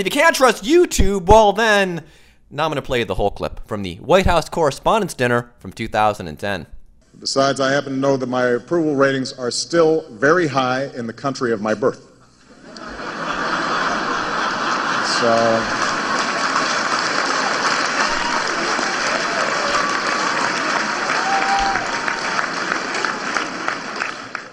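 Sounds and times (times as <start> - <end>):
speech: 0.0 - 12.1, 15.2 - 15.8
audience laughter: 12.4 - 21.2
large crowd applauding: 12.8 - 24.5.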